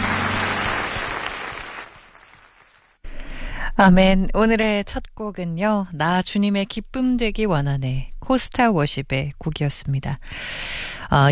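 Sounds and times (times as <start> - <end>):
crowd applauding: 0.0 - 3.0
speech: 3.8 - 11.3.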